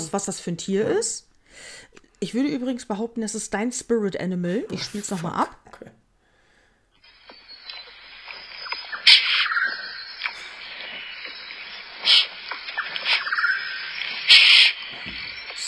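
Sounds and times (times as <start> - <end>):
speech: 0.1 - 6.0
dense hum of rainforest insects: 7.0 - 15.6
shrill squealing sloth calls: 7.0 - 15.6.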